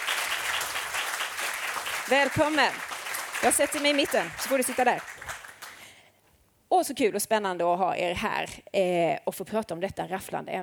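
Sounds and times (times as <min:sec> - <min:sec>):
audience applause: 0:00.0 - 0:05.8
speech: 0:02.1 - 0:05.1, 0:06.7 - 0:10.6.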